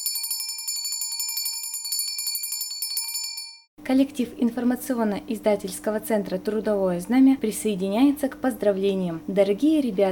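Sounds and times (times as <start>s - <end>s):
small school hand bell ringing: 0.0s - 3.7s
speech: 3.8s - 10.1s.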